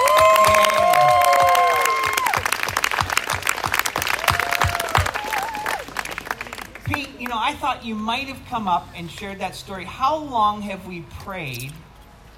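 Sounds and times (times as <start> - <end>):
crowd cheering and whooping: 0.0 - 3.1, 3.9 - 6.1
room full of people applauding: 0.0 - 7.2
speech: 7.7 - 11.9.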